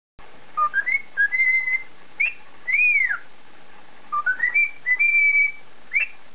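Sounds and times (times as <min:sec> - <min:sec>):
cockatiel whistling: 0:00.6 - 0:03.3, 0:04.1 - 0:06.2.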